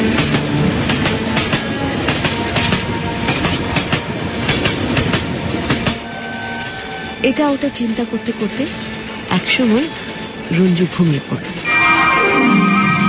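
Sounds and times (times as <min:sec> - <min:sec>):
train wheels clickety-clacking on rails: 0:00.0 - 0:11.7
train rushing past at high speed: 0:00.0 - 0:13.0
brief metallic squeals of a train: 0:06.0 - 0:07.3, 0:11.6 - 0:13.0
speech: 0:07.2 - 0:11.6.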